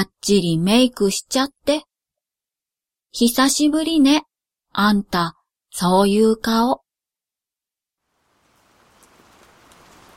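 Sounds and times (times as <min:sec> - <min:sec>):
speech: 0:00.0 - 0:01.9, 0:03.1 - 0:06.8
rain falling: 0:08.0 - 0:10.1.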